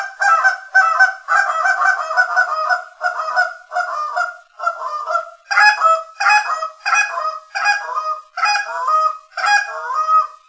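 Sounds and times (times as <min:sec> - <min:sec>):
Canada geese honking: 0:00.0 - 0:10.4.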